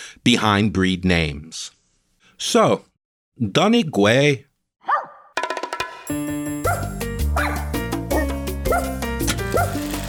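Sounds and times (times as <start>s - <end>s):
speech: 0.2s - 1.8s, 2.4s - 4.5s
dog barking: 4.8s - 5.4s, 6.6s - 9.8s
bright loud musical backing: 6.1s - 10.0s.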